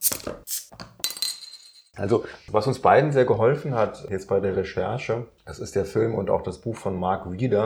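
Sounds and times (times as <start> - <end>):
drinking glasses clinking in a toast: 1.0 - 1.9
speech: 2.0 - 7.6.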